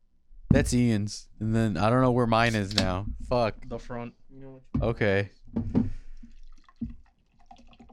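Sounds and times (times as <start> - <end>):
speech: 0.6 - 6.0
beer pouring into a glass: 6.5 - 7.9.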